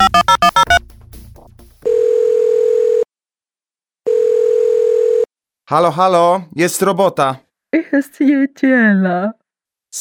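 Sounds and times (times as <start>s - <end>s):
smartwatch electronic call tone: 0.0s - 0.8s, 1.9s - 3.1s, 4.1s - 5.3s
speech: 5.7s - 9.9s.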